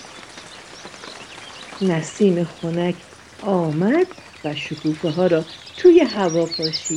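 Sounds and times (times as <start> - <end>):
light drizzling rain pattering: 0.0 - 6.9
speech: 1.8 - 6.9.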